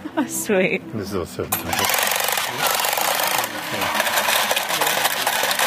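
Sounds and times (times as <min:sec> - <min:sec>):
speech: 0:00.1 - 0:02.0
coin clattering into a mechanical cat coin bank: 0:01.5 - 0:05.6.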